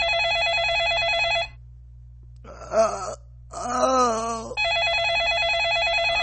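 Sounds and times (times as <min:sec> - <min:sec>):
landline telephone ringing with a trilling electronic tone: 0:00.0 - 0:01.6, 0:04.6 - 0:06.2
injured man moaning and wailing: 0:02.5 - 0:04.6.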